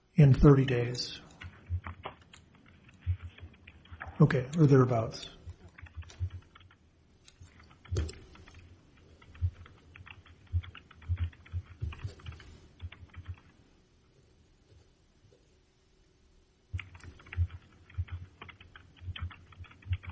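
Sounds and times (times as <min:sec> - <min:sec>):
speech: 0:00.2 - 0:01.2, 0:04.2 - 0:05.4
clattering of computer keyboard keys through a phone line during a court hearing: 0:01.2 - 0:13.6, 0:16.7 - 0:20.0.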